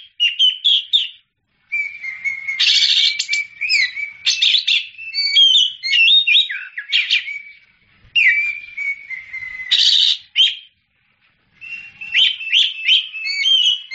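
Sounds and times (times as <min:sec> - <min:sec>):
Oriental magpie-robin singing: 0:00.0 - 0:10.8, 0:11.6 - 0:13.9.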